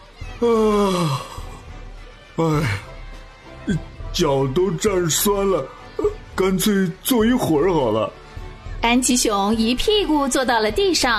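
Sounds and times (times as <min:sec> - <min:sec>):
speech: 0:00.4 - 0:01.4, 0:02.4 - 0:02.9, 0:03.7 - 0:08.2, 0:08.8 - 0:11.1
person imitating a big drawn-out yawn: 0:00.4 - 0:01.6.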